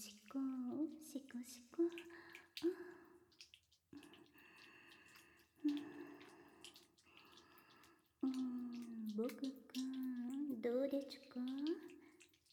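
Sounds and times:
speech: 0.0s - 2.9s
washing with both hands: 0.0s - 12.5s
water dripping: 0.0s - 12.5s.

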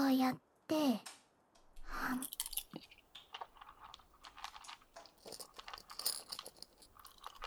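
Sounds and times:
small blue carbonated candies crackling and popping in the mouth: 2.2s - 7.4s.

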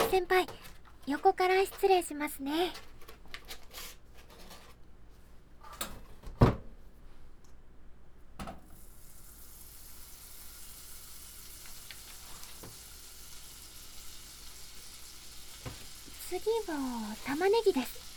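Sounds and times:
speech: 0.1s - 2.9s, 16.4s - 18.0s
butter sizzling in a pan: 8.7s - 18.1s.

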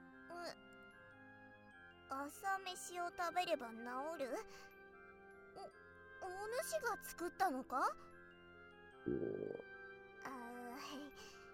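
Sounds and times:
speech: 0.4s - 0.7s, 2.1s - 4.8s, 5.6s - 8.1s, 9.0s - 9.7s
loud gurgling stomach growl: 9.1s - 9.7s.

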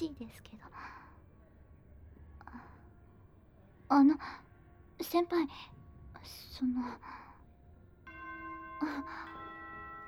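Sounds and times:
speech: 0.0s - 1.0s, 3.9s - 4.4s, 5.0s - 7.2s, 8.8s - 9.4s
school dismissal chime ringing: 8.1s - 10.0s.

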